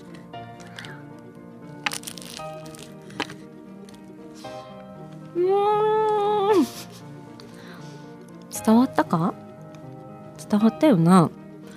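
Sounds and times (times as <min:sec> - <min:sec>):
teeth biting into flaky salty puff pastry filled with custard cream: 0:00.5 - 0:04.1
speech: 0:05.4 - 0:05.6, 0:08.6 - 0:09.4, 0:10.5 - 0:11.4.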